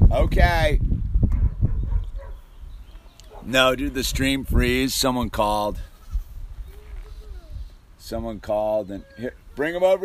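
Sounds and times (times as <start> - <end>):
speech: 0.1 - 0.9, 3.5 - 5.9, 8.1 - 10.0
goat bleating: 5.7 - 7.3, 8.9 - 10.0.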